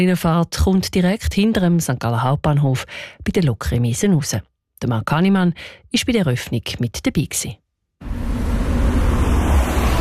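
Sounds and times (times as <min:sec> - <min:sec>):
speech: 0:00.0 - 0:08.1
road traffic at a busy city intersection with motorway access in St. Gallen: 0:08.0 - 0:10.0.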